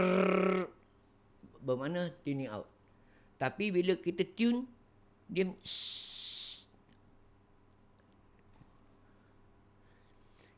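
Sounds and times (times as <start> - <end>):
speech: 0.0 - 0.6, 1.6 - 2.7, 3.4 - 6.2
voice imitating out-of-tune snare drum buzz: 0.0 - 0.8.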